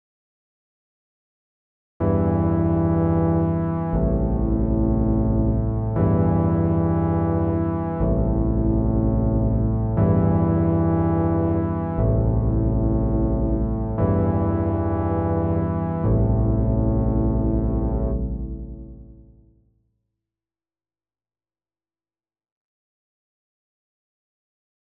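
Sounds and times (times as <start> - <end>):
synth chords in A minor: 2.0 - 19.5.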